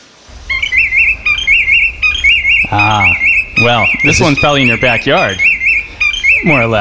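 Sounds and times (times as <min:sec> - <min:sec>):
willet calling: 0:00.3 - 0:06.8
speech: 0:02.7 - 0:05.5, 0:06.4 - 0:06.8.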